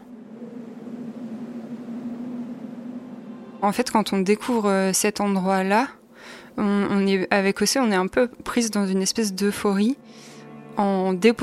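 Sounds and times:
wind blowing across an open plateau: 0.0 - 11.4
speech: 3.6 - 11.4.

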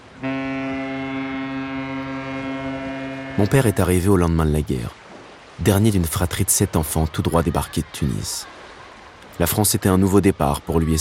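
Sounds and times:
ship's horn blast as a ship arrives in the port of Marseille: 0.0 - 4.2
low rumbling harbour background: 0.0 - 11.0
speech: 3.4 - 5.0, 5.6 - 8.6, 9.4 - 11.0.

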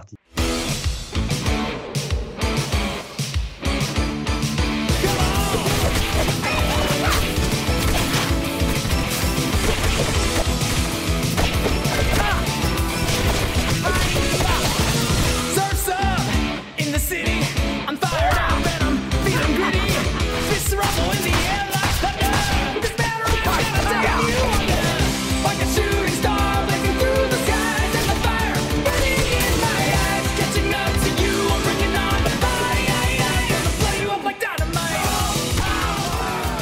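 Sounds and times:
dense driving video game backing track: 0.0 - 36.6
beat 'em up video game punches, whacks and crashing impacts: 7.1 - 12.4, 13.0 - 15.4
laughter: 19.1 - 21.3.

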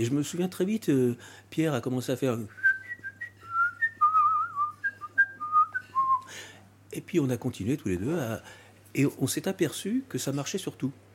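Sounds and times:
speech: 0.0 - 2.6, 6.9 - 11.0
low hum: 0.0 - 11.1
person whistling a wandering melody: 2.5 - 6.3.

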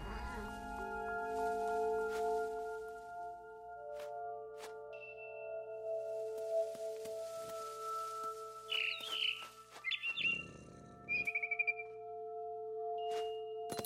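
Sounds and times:
steady sustained musical drone: 0.0 - 13.7
barn swallow chirping: 8.7 - 12.0.

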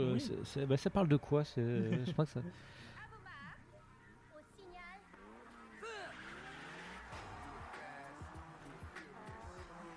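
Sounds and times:
speech: 0.0 - 3.0
laughter: 1.8 - 2.5
drifting car engines revving: 5.0 - 9.9
tire squeals from drifting cars: 5.2 - 9.9.

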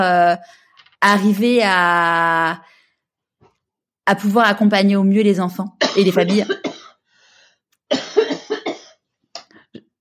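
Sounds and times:
speech: 0.0 - 2.7, 4.1 - 6.7
person coughing harshly: 5.8 - 7.0, 7.9 - 9.0.

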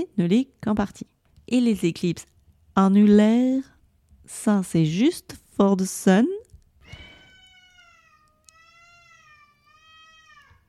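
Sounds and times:
speech: 0.0 - 3.7, 4.3 - 6.4
cat meowing: 6.8 - 10.6.

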